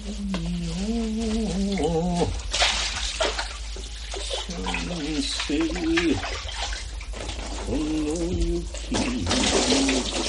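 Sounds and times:
person speaking: 0.0s - 2.4s, 4.2s - 6.3s, 7.6s - 10.2s
water gushing into a basin: 0.0s - 10.2s.

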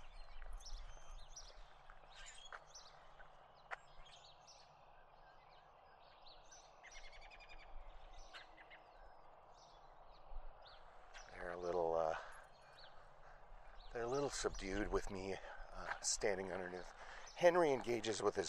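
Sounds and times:
robins chirping from a tree: 0.0s - 18.4s
soft outdoor hum: 0.0s - 18.4s
speech: 14.4s - 18.4s.

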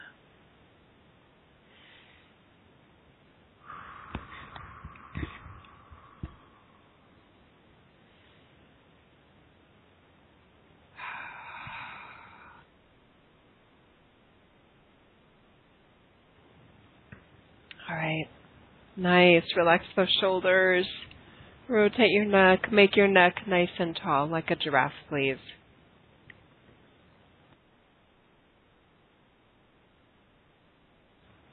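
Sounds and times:
slow breathing in through nose, out through mouth: 1.6s - 2.6s, 3.6s - 8.8s, 10.9s - 12.8s, 21.1s - 21.7s
speech: 17.9s - 18.4s, 19.0s - 21.0s, 21.7s - 25.6s.

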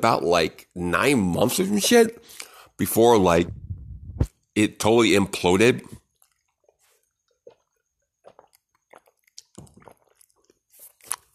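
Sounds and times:
speech: 0.0s - 3.6s, 4.6s - 6.0s
person drinking water: 1.3s - 2.8s, 5.8s - 11.3s.

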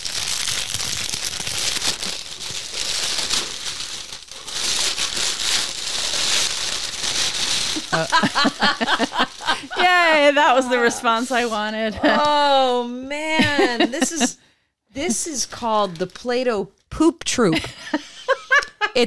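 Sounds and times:
brown paper wrapping being torn open: 0.0s - 9.6s
laughter: 7.8s - 12.6s, 13.4s - 14.4s, 17.6s - 19.0s
speech: 8.0s - 14.4s, 15.0s - 18.0s.

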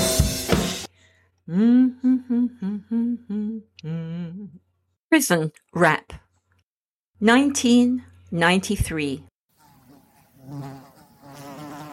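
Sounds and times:
speech: 1.5s - 6.2s, 7.2s - 9.3s, 10.5s - 11.5s
fly buzzing: 9.5s - 11.9s.

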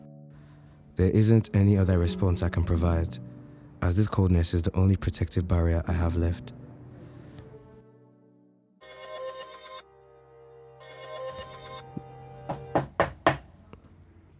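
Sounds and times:
speech: 1.0s - 3.3s, 3.9s - 6.6s
electronic ringing tone: 10.9s - 11.9s
knocks on a door: 12.5s - 13.5s.

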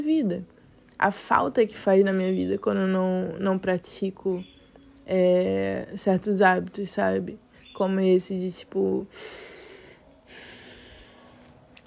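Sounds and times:
speech: 0.0s - 9.5s
slow deliberate deep breath with exhale through the nose: 9.1s - 11.6s.

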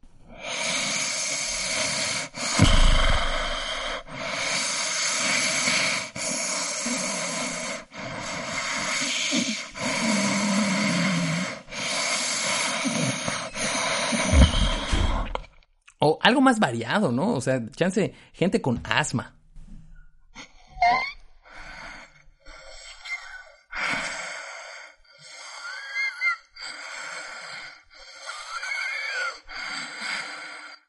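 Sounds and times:
heavy nasal breathing: 0.2s - 15.5s, 21.4s - 30.8s
snorting: 0.4s - 15.4s
speech: 16.3s - 19.4s.

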